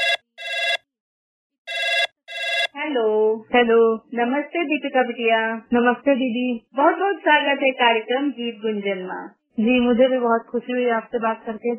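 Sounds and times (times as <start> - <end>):
electronic telephone ringing as an outgoing call is dialed: 0.0 - 0.9, 1.7 - 2.8
speech: 2.9 - 11.7.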